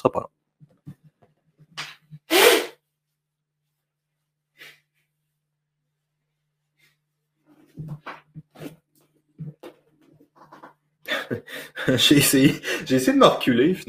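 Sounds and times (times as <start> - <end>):
person blowing their nose: 2.2 - 2.8
laughter: 11.1 - 12.9
speech: 11.9 - 13.8.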